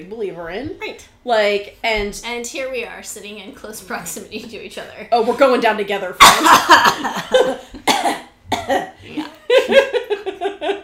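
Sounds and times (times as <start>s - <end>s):
speech: 0.0s - 7.7s, 8.7s - 8.9s
dry hacking coughs: 6.2s - 7.2s, 7.8s - 9.4s.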